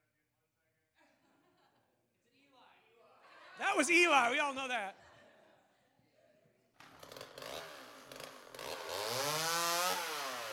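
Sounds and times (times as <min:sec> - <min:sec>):
laughter: 0:03.2 - 0:06.0
speech: 0:03.8 - 0:05.0
chainsaw running: 0:06.8 - 0:10.5.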